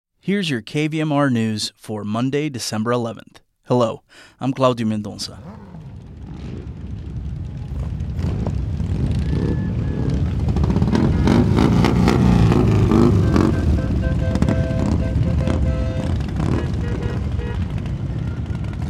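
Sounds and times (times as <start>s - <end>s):
speech: 0.2s - 6.6s
hundreds of motorcycles, mostly Harley-Davidsons, setting off on a charity toy run: 5.4s - 18.8s.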